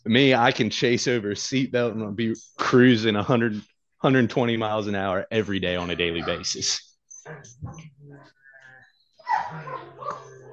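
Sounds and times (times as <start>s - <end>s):
speech: 0.1s - 8.4s
agitated dog barking and yelping: 5.8s - 6.6s, 9.2s - 10.5s.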